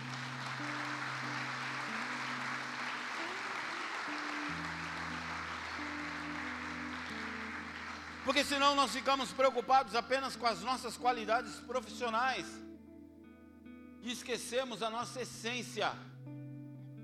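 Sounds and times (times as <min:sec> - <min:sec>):
congregation applauding: 0:00.0 - 0:10.4
sustained keyboard chords: 0:00.0 - 0:17.0
speech: 0:08.3 - 0:12.6, 0:14.0 - 0:16.1.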